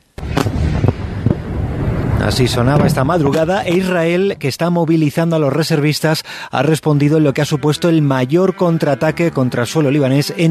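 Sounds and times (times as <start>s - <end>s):
sharp booms of rocket launches and explosions: 0.2s - 4.4s
constant heavy roaring rumble of rockets: 0.2s - 4.7s
speech: 2.2s - 10.5s.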